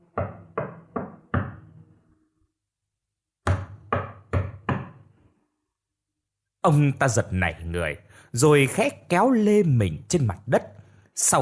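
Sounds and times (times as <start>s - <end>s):
hollow knocking: 0.0s - 1.7s, 3.4s - 5.0s
speech: 6.6s - 11.4s.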